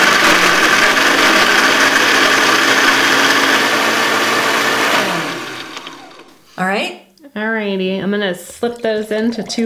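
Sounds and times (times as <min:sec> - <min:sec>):
blender crushing ice at high speed: 0:00.0 - 0:06.4
speech: 0:07.4 - 0:09.6.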